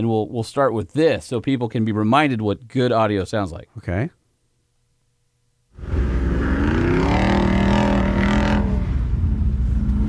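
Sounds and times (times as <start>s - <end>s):
speech: 0.0s - 4.2s
Jeep with the 392 engine roaring: 5.8s - 10.0s.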